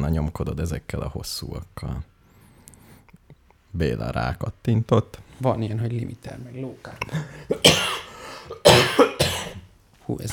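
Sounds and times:
speech: 0.0s - 2.1s, 3.7s - 8.0s, 10.1s - 10.3s
person coughing: 7.0s - 9.7s.

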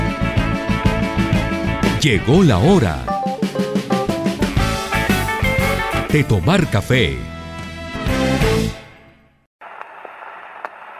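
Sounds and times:
music: 0.0s - 9.5s
speech: 2.0s - 3.1s, 6.1s - 7.3s
78 rpm vinyl record pops and crackles of surface noise: 9.6s - 10.9s.

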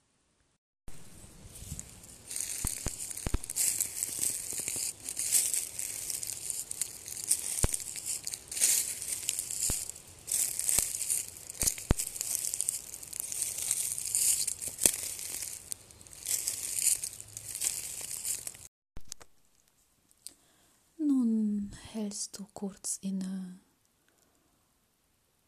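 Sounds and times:
footsteps crunching over dry pine cones and twigs: 0.9s - 19.1s
speech: 22.1s - 23.6s.

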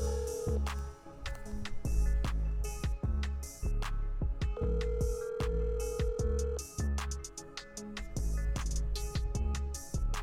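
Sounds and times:
outgoing phone call ringing tone: 0.0s - 0.7s, 4.6s - 6.8s
loud punchy drum-heavy music beat: 0.0s - 10.2s.

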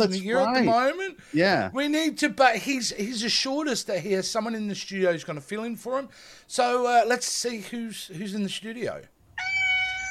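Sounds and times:
speech: 0.0s - 9.2s
cat meowing: 9.4s - 10.0s.

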